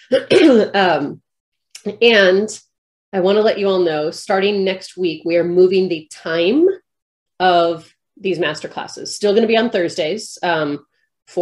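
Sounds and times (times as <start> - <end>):
throat clearing and rough coughing: 0.0 - 0.8
speech: 0.0 - 1.2, 1.8 - 6.8, 7.4 - 11.4.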